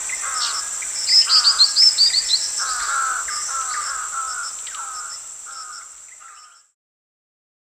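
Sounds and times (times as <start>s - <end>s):
black-winged flycatcher-shrike calls: 0.0s - 6.6s.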